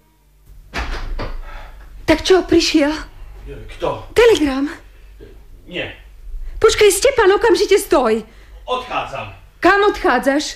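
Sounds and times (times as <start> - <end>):
low hum: 0.0 - 10.0
door being closed in a hurry: 0.6 - 1.5
speech: 2.1 - 4.8, 5.7 - 6.0, 6.6 - 10.5.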